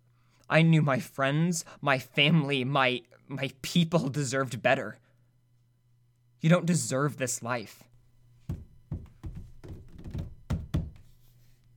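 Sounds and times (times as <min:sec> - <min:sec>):
speech: 0:00.5 - 0:05.1, 0:06.4 - 0:07.9
men with guns banging heavily on a door: 0:08.5 - 0:11.0.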